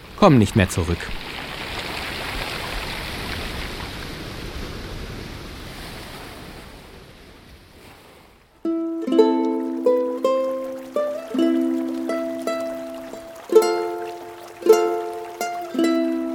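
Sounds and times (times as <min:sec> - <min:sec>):
stream of flowing water rushing and murmuring: 0:00.0 - 0:04.4, 0:08.7 - 0:16.3
speech: 0:00.2 - 0:01.2.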